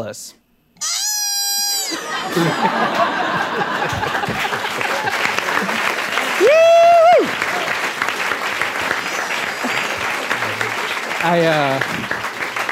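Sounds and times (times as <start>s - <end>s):
speech: 0.0s - 0.9s, 1.9s - 7.4s, 11.2s - 12.2s
person whooping: 0.8s - 2.6s, 6.3s - 7.7s
scattered cheers: 0.8s - 12.7s
laughter: 1.8s - 12.2s
crowd clapping: 2.1s - 12.7s.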